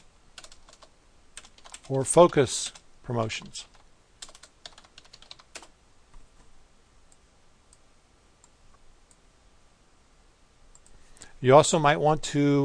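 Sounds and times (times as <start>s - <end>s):
rapid typing on a computer keyboard: 0.4s - 2.4s, 3.6s - 5.7s
speech: 1.9s - 3.7s, 11.4s - 12.6s.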